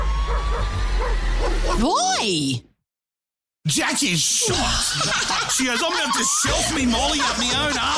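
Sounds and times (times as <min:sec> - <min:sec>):
dog giving short yappy woofs: 0:00.3 - 0:01.9
speech: 0:01.8 - 0:02.7, 0:03.6 - 0:07.9
laughter: 0:04.5 - 0:07.9.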